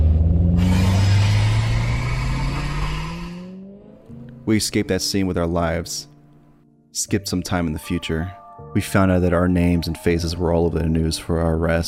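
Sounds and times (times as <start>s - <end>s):
car engine revving hard as the vehicle accelerates: 0.0s - 4.4s
speech: 4.5s - 6.1s, 6.9s - 11.8s.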